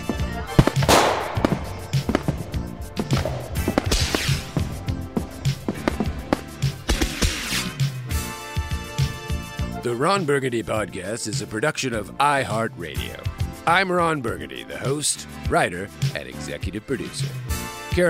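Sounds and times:
fireworks from a jumbo pack exploding: 0.0 - 7.8
speech: 9.9 - 18.0.

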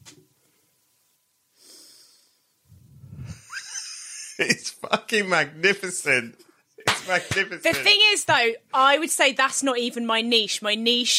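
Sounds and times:
person sniffing theatrically at a phone: 1.6 - 2.4
speech: 4.4 - 6.4, 7.1 - 11.1.

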